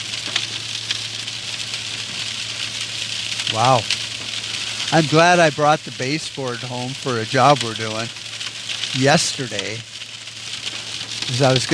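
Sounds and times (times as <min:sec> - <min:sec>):
heavy rain pouring down outside: 0:00.0 - 0:11.7
low electrical hum: 0:00.0 - 0:11.7
speech: 0:03.5 - 0:04.0, 0:04.9 - 0:08.2, 0:08.9 - 0:09.9, 0:11.3 - 0:11.7.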